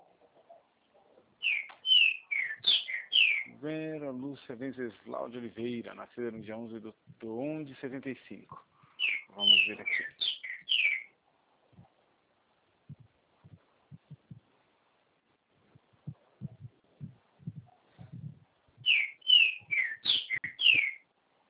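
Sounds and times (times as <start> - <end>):
small male songbird singing descending whistled notes: 1.3 - 3.8, 9.0 - 11.2, 17.4 - 21.1
speech: 3.6 - 8.7, 9.3 - 10.2
soft low thumps: 12.8 - 14.6, 15.6 - 19.0.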